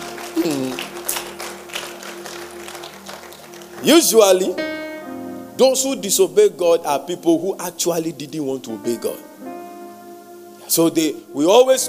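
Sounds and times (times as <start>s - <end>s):
audience clapping in praise: 0.0s - 4.6s
speech: 0.4s - 0.9s, 3.8s - 4.8s, 5.6s - 9.4s, 10.7s - 11.8s.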